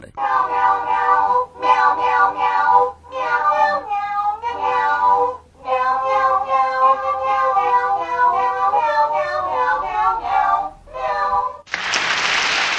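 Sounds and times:
chorus of Chinese kittens meowing a Christmas tune: 0.2s - 11.6s
applause-like noise: 11.7s - 12.7s.

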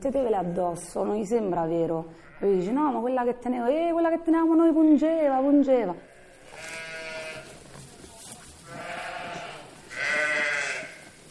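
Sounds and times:
speech: 0.0s - 6.8s
sheep bleating on a farm: 6.0s - 7.6s, 8.6s - 11.2s.

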